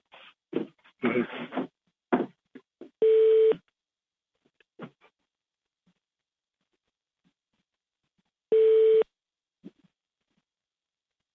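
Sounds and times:
electronic telephone beeps on a phone line on hold: 0:03.0 - 0:03.6, 0:08.5 - 0:09.0.

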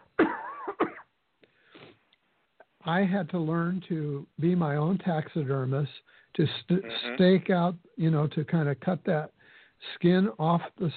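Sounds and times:
person clearing throat: 0:00.0 - 0:01.1, 0:06.8 - 0:07.2
speech: 0:02.9 - 0:10.9.

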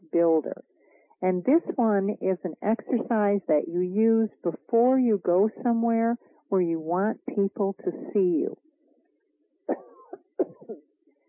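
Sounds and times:
speech: 0:00.1 - 0:08.6
person coughing: 0:09.7 - 0:10.8.

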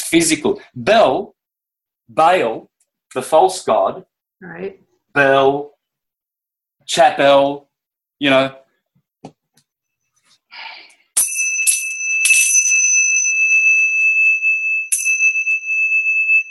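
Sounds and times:
speech: 0:00.1 - 0:01.4, 0:02.1 - 0:05.7, 0:06.9 - 0:08.6
Tibetan bells struck and ringing: 0:11.2 - 0:16.5.

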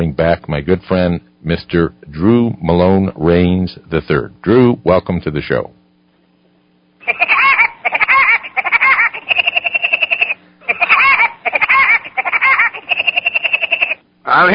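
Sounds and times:
speech: 0:00.0 - 0:05.8, 0:07.1 - 0:07.4, 0:14.4 - 0:14.5
voice imitating a cartoon woodpecker's laugh: 0:07.0 - 0:14.0.

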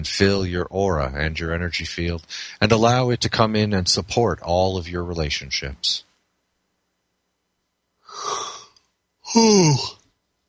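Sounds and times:
speech: 0:00.0 - 0:06.1, 0:09.3 - 0:10.0
breathy yawn: 0:08.1 - 0:10.0.

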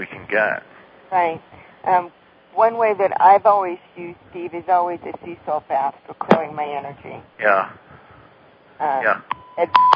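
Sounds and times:
speech: 0:00.3 - 0:07.9, 0:08.8 - 0:09.9
telephone line beeps of an incoming call connecting: 0:09.3 - 0:09.9.

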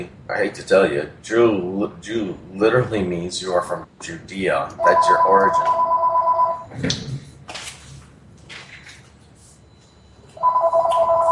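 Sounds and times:
speech: 0:00.0 - 0:05.8, 0:06.7 - 0:07.0
ringback tone of an outgoing phone call: 0:04.8 - 0:06.7, 0:10.4 - 0:11.2.

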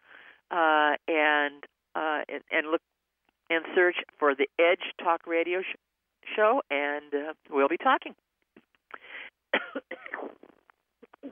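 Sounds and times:
speech: 0:00.5 - 0:01.7, 0:02.3 - 0:02.9, 0:03.5 - 0:08.2
person coughing in harsh raspy bursts: 0:09.6 - 0:10.4.

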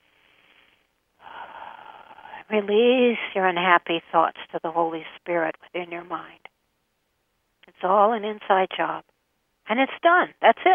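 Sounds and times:
deep breath taken during a calming mental exercise: 0:00.0 - 0:02.4
speech: 0:02.5 - 0:06.5, 0:07.7 - 0:09.1, 0:09.7 - 0:10.7.

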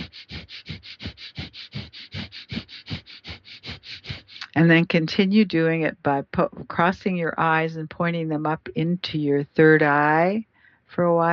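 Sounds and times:
rapid panting breath through the nose: 0:00.0 - 0:04.6
speech: 0:04.6 - 0:11.3.

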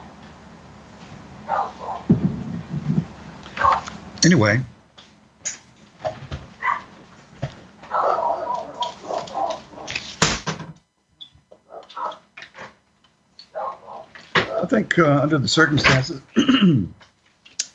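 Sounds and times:
dogs barking in backyard: 0:01.4 - 0:02.2, 0:03.5 - 0:04.0, 0:06.6 - 0:07.0, 0:07.8 - 0:10.1, 0:11.6 - 0:12.3, 0:13.4 - 0:14.7
speech: 0:04.2 - 0:04.7, 0:15.0 - 0:17.0.

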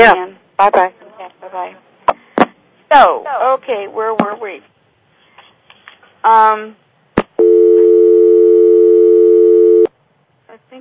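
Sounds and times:
speech: 0:00.0 - 0:01.9, 0:02.9 - 0:04.7, 0:06.2 - 0:06.8, 0:10.5 - 0:10.7
telephone dial tone: 0:07.4 - 0:09.9.

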